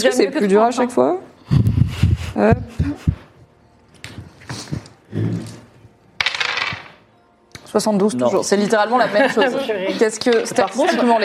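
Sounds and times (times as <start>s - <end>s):
speech: 0.0s - 1.7s, 2.4s - 3.1s, 7.7s - 11.2s
dice clattering across a hard surface: 6.2s - 7.0s.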